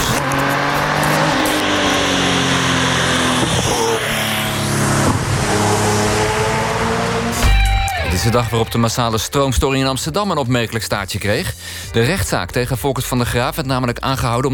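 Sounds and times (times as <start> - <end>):
Porsche sports car engine roaring and revving: 0.0 - 7.8
speech: 8.2 - 14.5.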